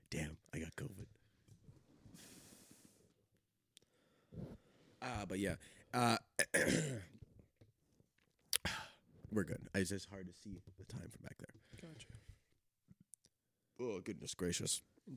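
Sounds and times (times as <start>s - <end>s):
speech: 5.2s - 7.1s, 9.4s - 12.2s, 13.8s - 15.1s
throaty burp: 6.4s - 7.2s.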